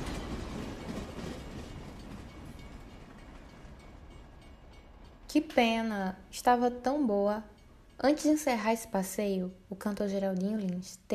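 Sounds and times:
train rolling along the rails with clickety-clack: 0:00.0 - 0:08.8
speech: 0:05.3 - 0:11.1.

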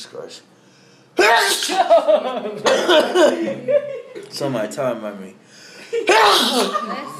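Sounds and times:
speech: 0:00.0 - 0:00.6, 0:01.2 - 0:07.1
sneeze: 0:01.2 - 0:01.9, 0:06.1 - 0:06.8
laughter: 0:01.6 - 0:04.3, 0:05.8 - 0:07.1.

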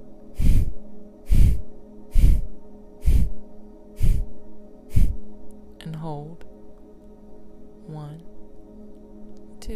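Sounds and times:
deep breath exhaled during a guided breathing exercise: 0:01.3 - 0:03.4.

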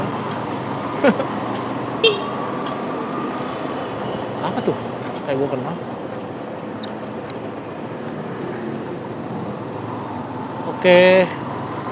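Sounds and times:
steady dense traffic rumble: 0:00.0 - 0:11.9
person laughing: 0:01.0 - 0:01.3
speech: 0:01.0 - 0:01.4, 0:05.4 - 0:06.0, 0:10.8 - 0:11.4
short sharp car horn beeps: 0:02.0 - 0:02.4.

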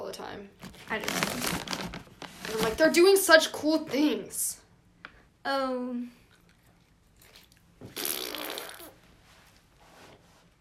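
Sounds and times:
speech: 0:00.1 - 0:04.6, 0:05.4 - 0:06.2
wet buzzy fart sound blown with a person's lips: 0:07.8 - 0:09.0.

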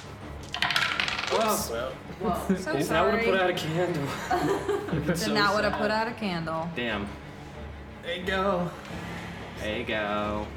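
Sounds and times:
dice clattering onto a table: 0:00.0 - 0:01.7
speech: 0:01.3 - 0:07.2, 0:08.0 - 0:10.5
laughter: 0:02.1 - 0:06.0.

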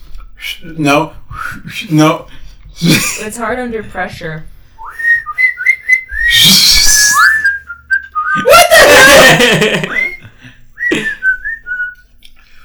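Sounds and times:
speech: 0:00.5 - 0:04.5, 0:09.2 - 0:10.0
person whistling a short wavering melody: 0:01.3 - 0:01.7, 0:04.8 - 0:12.0
loud bursts of laughter: 0:08.3 - 0:10.3.

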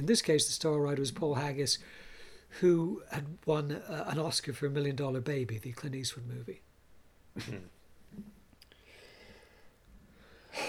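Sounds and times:
speech: 0:00.0 - 0:06.7, 0:07.4 - 0:08.4
quiet breathing: 0:01.8 - 0:02.6, 0:08.6 - 0:10.6.

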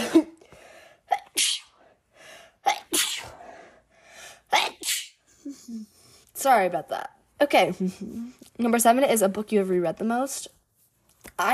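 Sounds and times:
person sneezing: 0:01.1 - 0:01.8, 0:02.6 - 0:03.4, 0:04.5 - 0:05.2
speech: 0:05.7 - 0:10.6.

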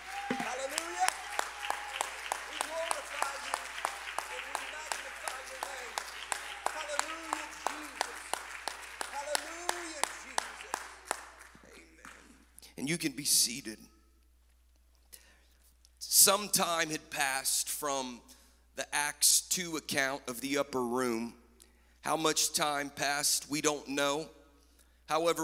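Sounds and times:
scattered voices cheering and calling out: 0:00.0 - 0:12.1
crowd clapping enthusiastically: 0:00.0 - 0:12.5
speech: 0:12.9 - 0:14.0, 0:16.2 - 0:21.4, 0:22.0 - 0:24.4, 0:25.1 - 0:25.4.

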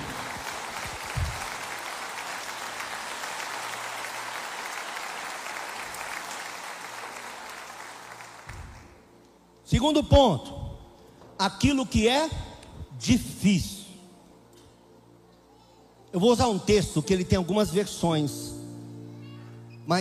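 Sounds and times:
audience at a church service clapping: 0:00.0 - 0:09.1
speech: 0:09.7 - 0:10.6, 0:11.4 - 0:12.4, 0:13.0 - 0:13.8, 0:16.2 - 0:18.5.

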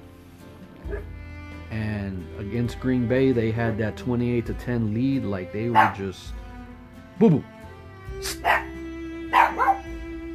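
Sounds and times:
speech: 0:01.8 - 0:06.4, 0:07.2 - 0:07.5, 0:08.2 - 0:08.7
dog barking excitedly: 0:05.7 - 0:06.0, 0:08.2 - 0:08.7, 0:09.3 - 0:09.9.

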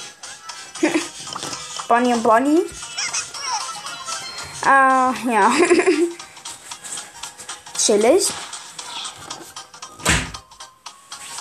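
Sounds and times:
speech: 0:01.9 - 0:02.8, 0:04.6 - 0:06.0, 0:07.9 - 0:08.4
laughter: 0:02.9 - 0:04.3, 0:05.4 - 0:06.2
door shutting with a solid thud: 0:10.0 - 0:10.4.

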